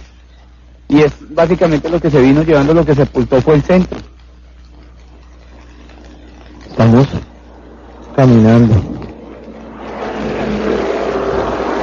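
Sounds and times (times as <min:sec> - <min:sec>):
speech: 0:00.9 - 0:04.1, 0:08.2 - 0:08.9
broad steady road roar: 0:06.4 - 0:11.8
heavy vehicle rumbling past on a road: 0:07.5 - 0:11.8.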